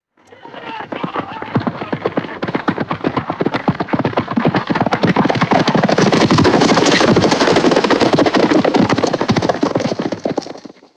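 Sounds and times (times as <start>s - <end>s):
horses milling about on dirt: 0.2s - 10.9s
laughter: 0.3s - 2.5s.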